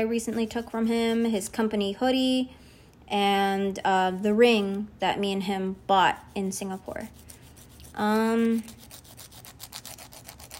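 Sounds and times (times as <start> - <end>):
speech: 0.0 - 7.2, 8.0 - 8.8
nail file rasping on fingernails: 7.1 - 10.5.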